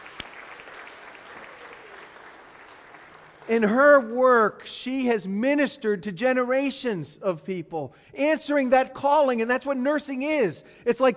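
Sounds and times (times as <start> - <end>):
audience applause: 0.0 - 3.7
speech: 3.5 - 11.1.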